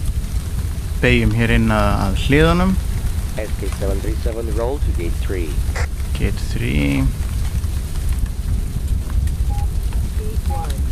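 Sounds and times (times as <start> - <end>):
rain falling outside: 0.0 - 10.8
speech: 1.0 - 7.2
faint short electronic beeps: 9.4 - 10.8.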